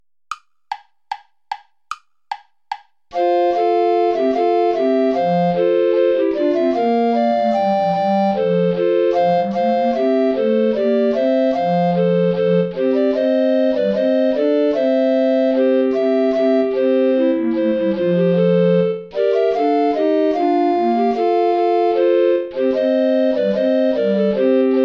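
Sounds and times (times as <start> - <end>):
bourree play-along backing music without soprano recorder: 3.1 - 24.8.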